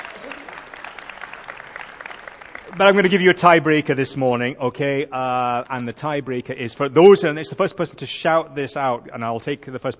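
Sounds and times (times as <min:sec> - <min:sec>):
audience applause at a quiz session: 0:00.0 - 0:03.6
speech: 0:02.8 - 0:09.9.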